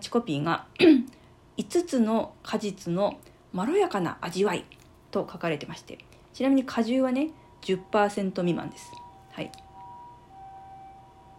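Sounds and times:
speech: 0:00.1 - 0:09.6
faint two-tone ambulance siren wailing outside: 0:07.0 - 0:11.3.

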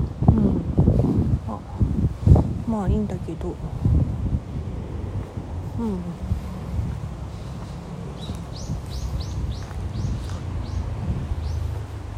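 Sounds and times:
heavy rumble of wind noise: 0:00.0 - 0:12.1
speech: 0:02.8 - 0:04.1, 0:05.8 - 0:06.3
bird chirping outdoors: 0:08.2 - 0:11.8.

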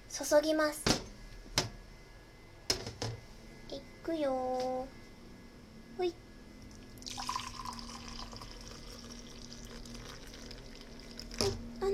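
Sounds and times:
faint low hum: 0:00.0 - 0:11.9
speech: 0:00.2 - 0:00.9, 0:03.7 - 0:05.0, 0:06.0 - 0:06.2
hot dissolved gelatin liquid poured into heat-resistant container for plum jelly: 0:06.8 - 0:11.4.

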